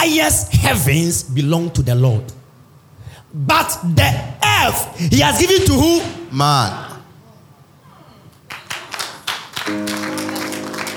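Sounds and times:
speech: 0:00.0 - 0:02.4, 0:03.3 - 0:06.9
crowd clapping: 0:08.3 - 0:10.9
sustained keyboard-like chord: 0:09.7 - 0:10.9.

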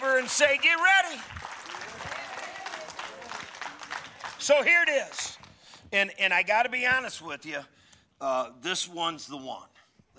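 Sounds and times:
seated audience applauding: 0:00.0 - 0:05.8
speech: 0:00.2 - 0:01.5, 0:04.4 - 0:10.1.

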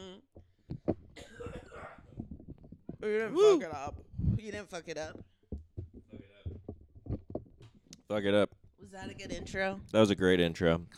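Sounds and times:
person coughing: 0:01.2 - 0:02.2
speech: 0:03.0 - 0:05.3, 0:08.1 - 0:10.9.

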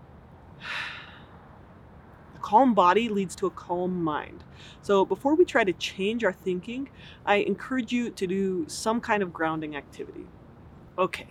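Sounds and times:
deep breath: 0:00.6 - 0:01.4
speech: 0:02.5 - 0:10.4, 0:11.0 - 0:11.2.

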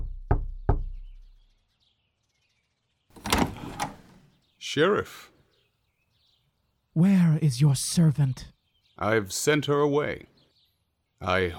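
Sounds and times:
heavy booming knocks on a large wooden door: 0:00.0 - 0:01.3
broad scraping rush of a large wooden door moving: 0:03.1 - 0:04.4
speech: 0:04.6 - 0:05.3, 0:07.0 - 0:10.3, 0:11.2 - 0:11.5.

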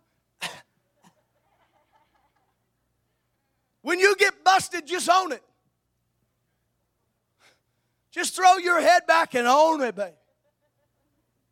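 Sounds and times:
fake cough: 0:00.4 - 0:01.2
laughter: 0:01.0 - 0:02.7, 0:10.2 - 0:11.3
speech: 0:03.8 - 0:05.5, 0:08.2 - 0:10.2.

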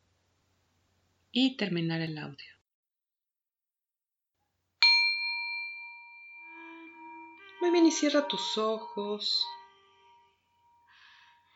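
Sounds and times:
speech: 0:01.3 - 0:02.6, 0:07.6 - 0:09.6
gong being struck and ringing: 0:04.9 - 0:10.4.

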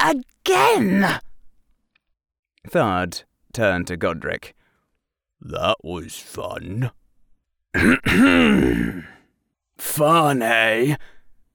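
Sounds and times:
speech: 0:00.1 - 0:01.2, 0:02.6 - 0:04.6, 0:05.4 - 0:07.0, 0:07.7 - 0:09.2, 0:09.8 - 0:11.2
furious centurion coughing, clearing his throat: 0:07.8 - 0:09.2.

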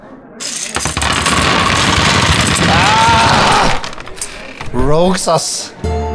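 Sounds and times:
large pile of dice poured out: 0:00.4 - 0:04.6
speech: 0:04.8 - 0:06.0.

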